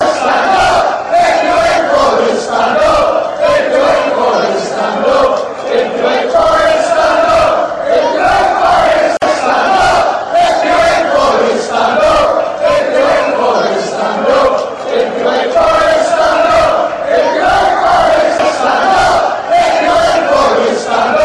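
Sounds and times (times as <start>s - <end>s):
football fans chanting: 0.0s - 21.2s.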